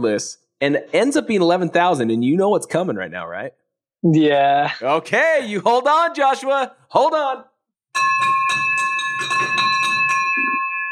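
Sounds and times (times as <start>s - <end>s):
speech: 0.0s - 8.4s
bell ringing: 7.9s - 10.9s.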